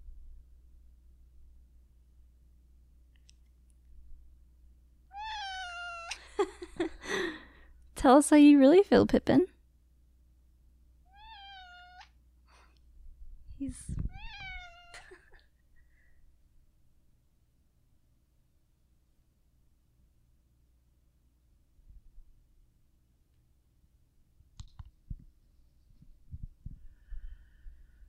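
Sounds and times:
quiet hum: 0.0s - 28.0s
cat meowing: 5.1s - 6.2s, 11.1s - 12.2s, 14.1s - 15.2s
speech: 8.0s - 9.5s.

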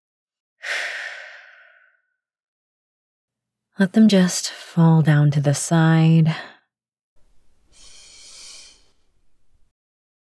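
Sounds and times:
deep soft breath during a relaxation exercise: 0.6s - 2.0s, 7.2s - 9.6s
speech: 3.8s - 6.5s.

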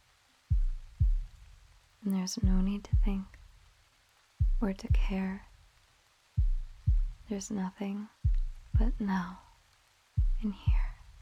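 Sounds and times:
faint hiss: 0.0s - 11.2s
deep heartbeat thumps: 0.5s - 1.7s, 2.4s - 3.5s, 4.4s - 5.6s, 6.4s - 7.3s, 8.2s - 9.4s, 10.2s - 11.2s
speech: 2.0s - 3.4s, 4.6s - 5.5s, 7.3s - 8.2s, 8.8s - 9.4s, 10.4s - 10.9s.

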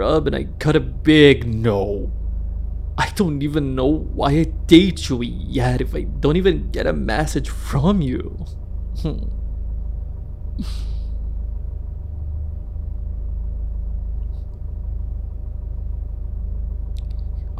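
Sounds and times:
speech: 0.0s - 2.2s, 3.0s - 9.4s, 10.6s - 10.9s
car road noise heard from inside the cabin: 0.0s - 17.5s
breathy sounds: 10.6s - 11.2s.

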